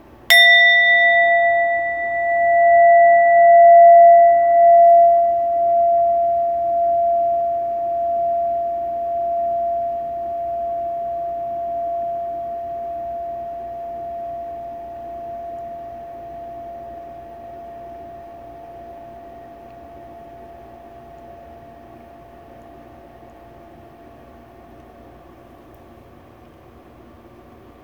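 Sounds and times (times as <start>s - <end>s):
meditation chime ringing: 0.3s - 17.4s.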